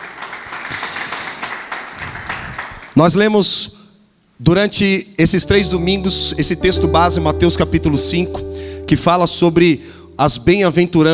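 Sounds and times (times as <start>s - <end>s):
church congregation applauding during a worship service: 0.0s - 3.0s
speech: 3.0s - 3.8s, 4.4s - 11.1s.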